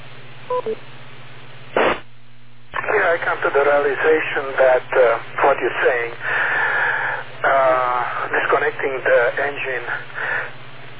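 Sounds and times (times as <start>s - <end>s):
low steady phone line hum: 0.0s - 10.9s
two short electronic tones on a phone line: 0.5s - 0.8s
speech: 0.6s - 0.9s, 3.2s - 6.6s, 8.3s - 10.5s
brief burst of noise on a phone line: 1.4s - 10.9s.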